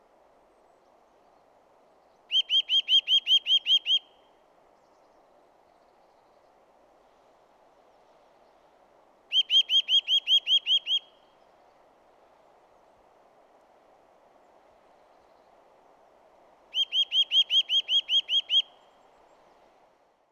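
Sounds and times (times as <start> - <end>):
faint low background noise: 0.0 - 20.3
Eurasian nuthatch Sitta europaea calling in ringing down-slurred notes: 2.3 - 4.0, 9.3 - 11.0, 16.7 - 18.8.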